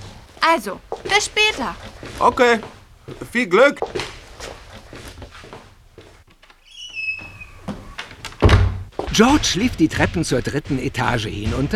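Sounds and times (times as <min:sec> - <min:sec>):
speech: 0:00.4 - 0:04.0, 0:09.2 - 0:11.7
high squeaky tone: 0:06.6 - 0:08.0
dull knocks on a door: 0:08.4 - 0:11.7.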